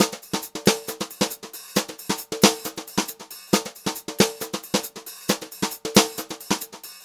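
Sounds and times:
brushed drum loops: 0:00.0 - 0:07.0.

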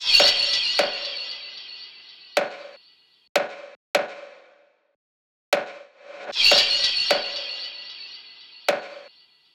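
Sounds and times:
percussion loop: 0:00.0 - 0:02.8, 0:06.4 - 0:09.2.

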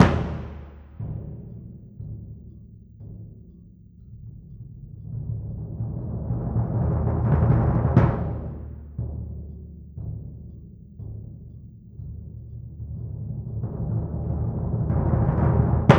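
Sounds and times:
orchestral bass drum: 0:00.0 - 0:02.4, 0:05.0 - 0:11.4, 0:12.0 - 0:15.9.

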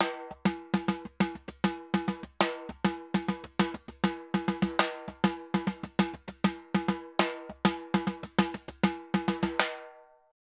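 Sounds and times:
drums and percussion: 0:00.0 - 0:10.1.

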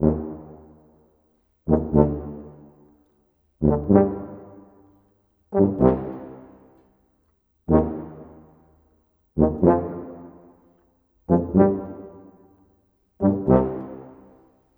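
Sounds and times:
trombone: 0:00.0 - 0:00.8, 0:01.7 - 0:02.8, 0:03.6 - 0:04.8, 0:05.6 - 0:06.6, 0:07.7 - 0:08.5, 0:09.4 - 0:10.5, 0:11.3 - 0:12.3, 0:13.2 - 0:14.4
tuba: 0:00.0 - 0:14.7.

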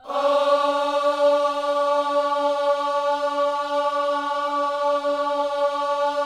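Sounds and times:
gospel vocal: 0:00.0 - 0:06.2.

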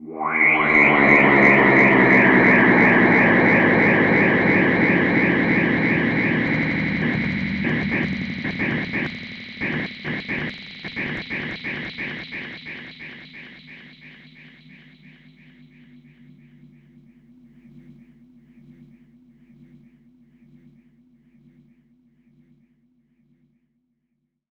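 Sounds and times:
electric piano effects for drum and bass: 0:00.0 - 0:11.5.

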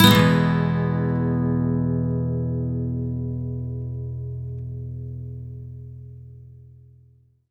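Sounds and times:
electric guitar major sweep loops in E: 0:00.0 - 0:05.3.

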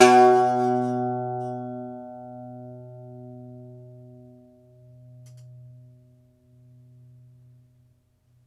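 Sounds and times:
plucked strings of an Irish bouzouki: 0:00.0 - 0:04.2.

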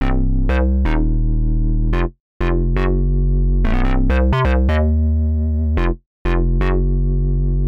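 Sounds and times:
bass C note: 0:00.0 - 0:07.6.

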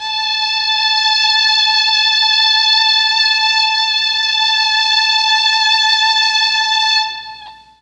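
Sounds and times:
three violins on a Mellotron MKII playing A3: 0:00.0 - 0:07.7.

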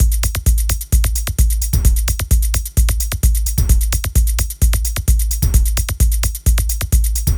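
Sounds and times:
trance drum and percussion loop: 0:00.0 - 0:07.3.

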